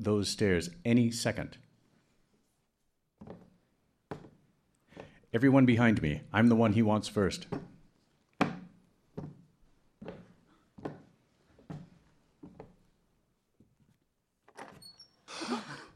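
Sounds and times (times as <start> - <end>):
speech: 0.0 - 1.6, 5.3 - 7.7
door opening with a rattling rush of noise: 14.5 - 15.3.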